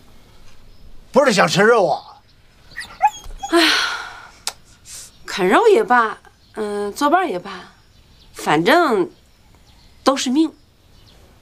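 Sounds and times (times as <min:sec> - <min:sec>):
speech: 0:01.2 - 0:02.1, 0:05.4 - 0:07.7, 0:08.4 - 0:09.2, 0:10.1 - 0:10.6
small dog whining yelp: 0:02.7 - 0:03.6.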